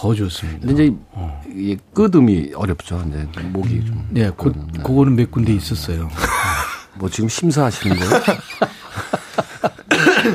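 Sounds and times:
speech: 0:00.0 - 0:06.4, 0:07.0 - 0:08.8
laughter: 0:06.2 - 0:06.9, 0:07.7 - 0:10.3
person coughing: 0:09.9 - 0:10.3.

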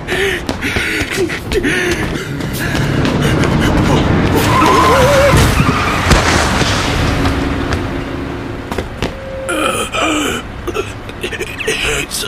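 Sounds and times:
vehicle skidding with long screech: 0:00.4 - 0:10.6
roaring noise: 0:01.6 - 0:11.1
vehicle crashing into front of a bus: 0:04.2 - 0:09.2
harsh wavering squeal: 0:04.4 - 0:06.1, 0:09.0 - 0:10.3.

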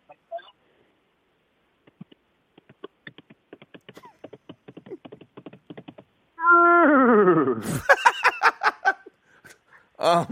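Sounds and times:
person clicking tongue to imitate galloping horse hooves: 0:01.8 - 0:06.0
speech: 0:07.2 - 0:07.9, 0:10.1 - 0:10.2
laughter: 0:07.6 - 0:09.1.

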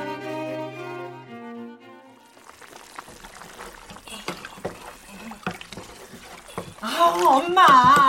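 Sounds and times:
pot of something boiling on the stove: 0:02.2 - 0:08.0.

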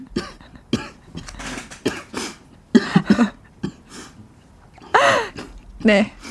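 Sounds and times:
person coughing: 0:00.0 - 0:04.0
speech: 0:05.8 - 0:06.2.

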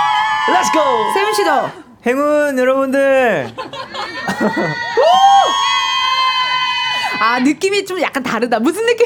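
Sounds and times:
studio crowd of fans screaming and cheering at a live music show: 0:00.0 - 0:01.8, 0:04.0 - 0:07.3
speech: 0:00.5 - 0:05.6, 0:07.2 - 0:09.0
laughter: 0:03.3 - 0:05.5.

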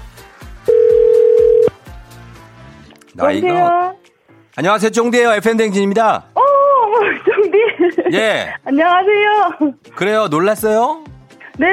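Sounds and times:
telephone ringback tone of a radio show calling a listener: 0:00.7 - 0:01.7
speech: 0:03.2 - 0:04.0, 0:04.6 - 0:06.3, 0:07.8 - 0:11.7
laughter: 0:06.8 - 0:08.6.

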